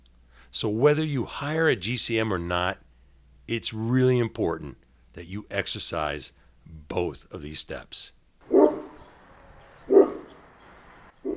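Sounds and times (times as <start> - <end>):
speech: 0.5 - 2.8, 3.5 - 8.2
English Golden Retriever barking: 8.4 - 9.0, 9.8 - 10.4, 11.2 - 11.3.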